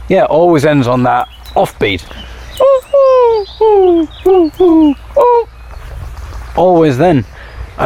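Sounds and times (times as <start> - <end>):
speech: 0.1 - 5.5, 6.6 - 7.8
wood pigeon cooing: 2.0 - 6.4.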